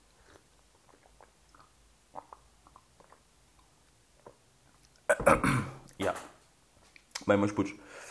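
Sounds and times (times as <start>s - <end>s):
sipping and swallowing a drink: 0.2s - 6.0s
speech: 7.3s - 8.0s.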